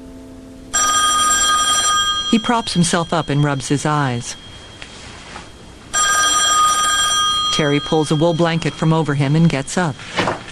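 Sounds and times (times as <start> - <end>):
desk telephone ringing in a workshop: 0.7 - 10.4
speech: 2.3 - 4.4, 7.6 - 10.4.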